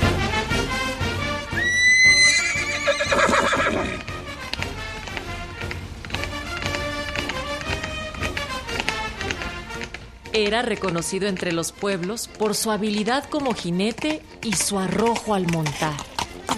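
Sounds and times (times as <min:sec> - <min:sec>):
horse hooves clattering while galloping: 0:00.0 - 0:16.5
horse neighing with a loud high whinny: 0:01.6 - 0:04.1
speech: 0:10.4 - 0:16.5.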